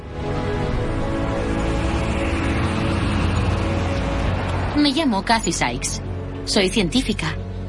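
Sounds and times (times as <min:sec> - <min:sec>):
car engine humming while driving: 0:00.0 - 0:06.6
road noise: 0:00.0 - 0:07.6
speech: 0:04.8 - 0:07.4.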